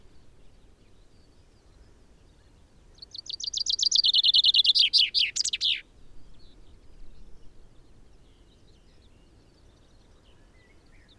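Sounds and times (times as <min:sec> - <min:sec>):
common chaffinch Fringilla coelebs song: 0:03.0 - 0:05.8.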